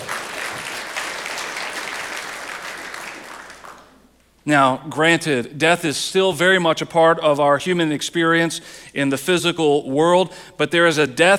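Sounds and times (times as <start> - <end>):
audience clapping hands: 0.0 - 4.0
speech: 4.4 - 11.3.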